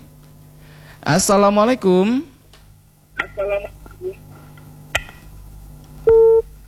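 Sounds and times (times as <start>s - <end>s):
speech: 1.0s - 2.3s, 3.4s - 4.2s
telephone busy tone beep after caller disconnects: 6.1s - 6.4s.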